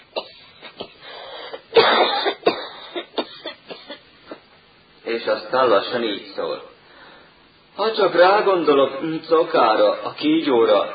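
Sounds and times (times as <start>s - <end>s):
tall thin boy coughing: 1.6s - 4.4s
speech: 5.1s - 6.7s, 7.8s - 10.9s.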